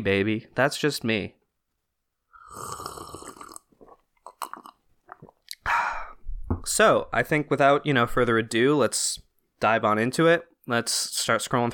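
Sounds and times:
speech: 0:00.0 - 0:01.4, 0:06.6 - 0:11.7
slurping hot coffee: 0:02.4 - 0:05.6
soft swallowing and mouth sounds: 0:02.4 - 0:06.2.

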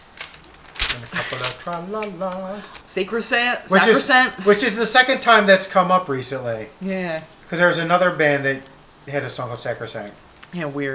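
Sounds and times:
paper page flipped: 0:00.2 - 0:01.8
speech: 0:01.0 - 0:10.9.

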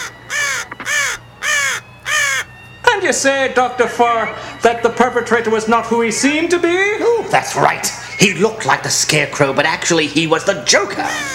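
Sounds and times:
black raven cawing: 0:00.0 - 0:02.7, 0:11.0 - 0:11.3
speech: 0:03.0 - 0:11.3.

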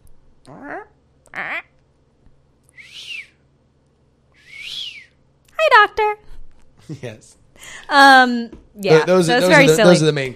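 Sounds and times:
speech: 0:00.4 - 0:01.7, 0:06.9 - 0:10.3
person whistling to imitate a pet bird: 0:02.7 - 0:03.4, 0:04.4 - 0:05.2
person making voiced chirps to mimic a pet bird: 0:02.8 - 0:03.3, 0:04.4 - 0:05.1.

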